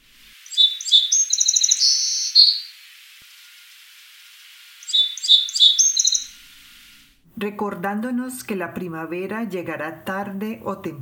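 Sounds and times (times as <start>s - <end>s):
song sparrow singing: 0.4s - 2.8s, 4.8s - 6.4s
speech: 7.4s - 11.0s.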